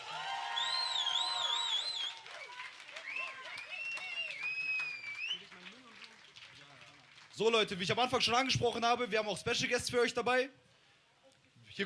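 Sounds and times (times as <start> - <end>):
crowd cheering voices: 0.0 - 5.5
shrill whistles from a crowd: 0.4 - 5.5
audience clapping loudly: 2.0 - 7.4
speech: 7.4 - 10.6.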